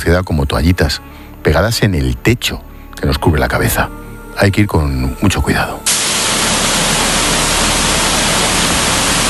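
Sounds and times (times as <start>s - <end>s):
speech: 0.0s - 5.9s
deafening rushing water in a sewer canal: 5.9s - 9.2s.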